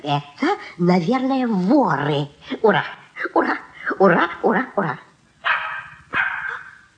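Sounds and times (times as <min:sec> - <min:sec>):
speech: 0:00.0 - 0:05.0
puppy behind a door barking: 0:05.4 - 0:06.9.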